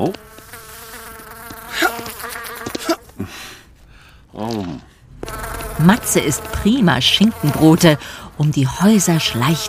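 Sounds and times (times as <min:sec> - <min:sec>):
speech: 0:00.0 - 0:00.2, 0:05.8 - 0:09.6
fly buzzing around a cat's nose: 0:00.0 - 0:03.1, 0:05.1 - 0:09.6.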